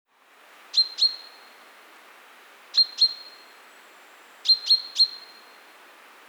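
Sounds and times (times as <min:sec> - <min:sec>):
low background hiss: 0:00.1 - 0:06.2
common chaffinch calling: 0:00.8 - 0:01.5, 0:02.8 - 0:03.4, 0:04.4 - 0:05.4.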